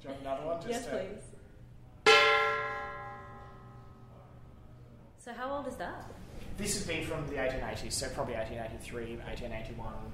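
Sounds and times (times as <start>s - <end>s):
speech: 0.6s - 1.3s, 5.3s - 10.1s
traditional Chinese temple gong from around the 1880s struck: 2.1s - 4.0s.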